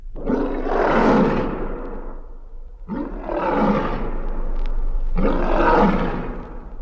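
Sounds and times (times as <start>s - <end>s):
lion roaring: 0.1s - 6.7s.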